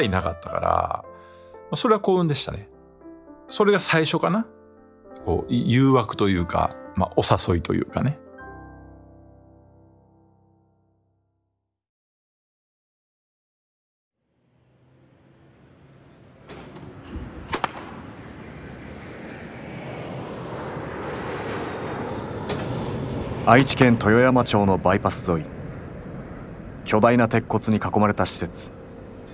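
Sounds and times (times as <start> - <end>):
speech: 0.0 - 1.1, 1.7 - 2.7, 3.5 - 4.6, 5.2 - 8.2, 23.5 - 25.6, 26.9 - 28.8
jet aircraft roar from a nearby airport: 14.4 - 29.3
ball hits at a batting centre: 16.5 - 18.6.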